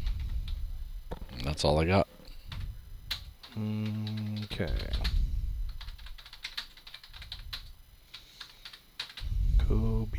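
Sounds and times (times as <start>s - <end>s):
low rumble: 0.0s - 1.7s, 2.3s - 10.1s
speech: 1.4s - 2.1s, 3.6s - 5.1s
typing on a computer keyboard: 2.5s - 9.2s.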